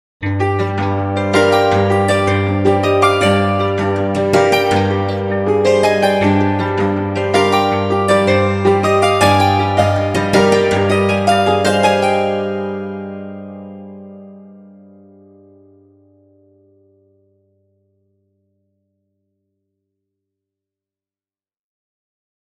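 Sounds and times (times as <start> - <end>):
harp guitar melody: 0.2 - 17.2.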